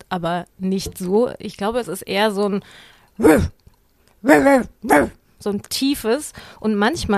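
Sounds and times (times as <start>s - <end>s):
speech: 0.1s - 3.6s, 4.2s - 7.1s
person imitating the deep bark of a small dog: 3.2s - 3.6s, 4.2s - 5.2s.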